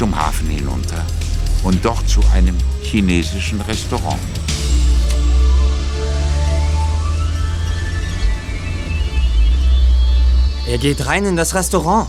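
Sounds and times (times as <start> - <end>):
car driving with deep constant engine rumble: 0.0 - 12.0
road noise: 0.0 - 12.0
speech: 1.7 - 4.7, 10.7 - 12.0.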